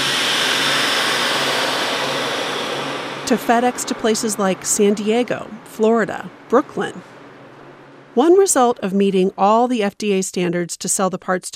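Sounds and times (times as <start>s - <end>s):
vacuum sealer sealing a double-bagged femur bone in a processing room: 0.0s - 3.3s
speech: 3.3s - 7.1s, 8.2s - 11.5s.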